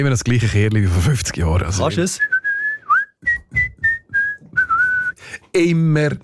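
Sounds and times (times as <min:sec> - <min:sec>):
speech: 0:00.0 - 0:02.4, 0:05.5 - 0:06.2
person whistling a short tune: 0:02.2 - 0:05.2.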